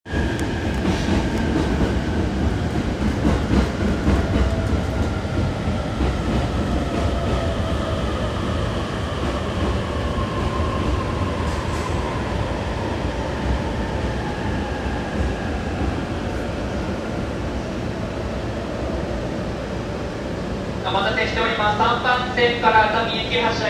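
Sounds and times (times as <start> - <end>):
JR Tokaido Line train station at Hiratsuka south: 0.1 - 23.6.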